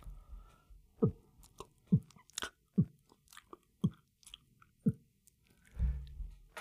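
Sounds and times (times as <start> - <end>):
wet chewing of a deviled egg: 1.0 - 5.7.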